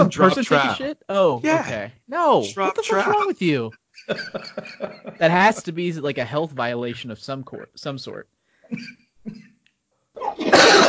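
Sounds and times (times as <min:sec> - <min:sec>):
laughter: 0:00.0 - 0:00.8, 0:02.4 - 0:06.0
speech: 0:00.0 - 0:09.4
person coughing: 0:04.2 - 0:05.5, 0:08.7 - 0:09.6, 0:10.2 - 0:10.8.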